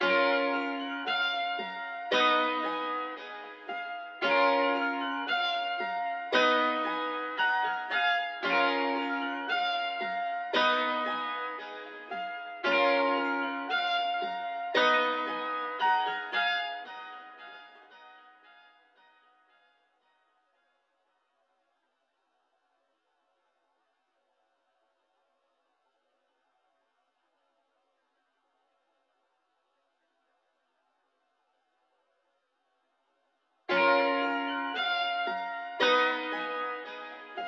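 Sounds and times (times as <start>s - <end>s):
high keys melody in D sharp minor at 114 BPM: 0.0s - 19.7s, 33.7s - 37.4s.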